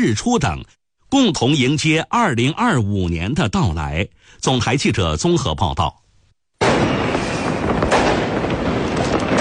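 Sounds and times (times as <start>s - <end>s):
speech: 0.0s - 6.0s
New Year fireworks crackling and popping in Changchun China: 6.6s - 9.3s.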